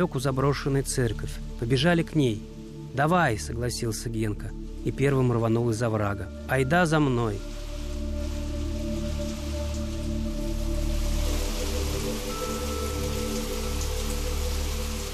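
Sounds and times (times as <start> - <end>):
speech: 0.0 - 7.5
heavy rain downpour: 4.6 - 15.1.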